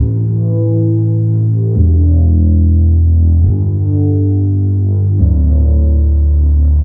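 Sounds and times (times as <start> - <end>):
spacey pad bass: 0.0 - 6.8.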